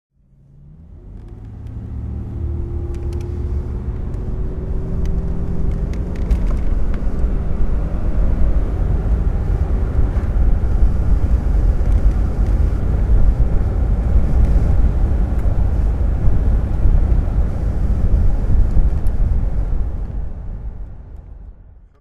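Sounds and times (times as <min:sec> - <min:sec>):
Jaguar XJS 5.3L V12 convertible engine driving: 0:00.2 - 0:21.9.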